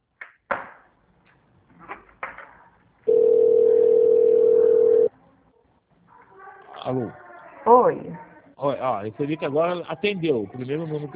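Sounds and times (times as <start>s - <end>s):
telephone dial tone while calling a number: 3.1s - 5.1s
speech: 6.9s - 11.1s.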